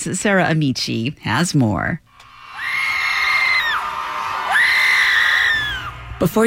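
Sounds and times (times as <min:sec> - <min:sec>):
speech: 0:00.0 - 0:02.1, 0:06.2 - 0:06.4
crowd of people screaming together: 0:02.2 - 0:06.3.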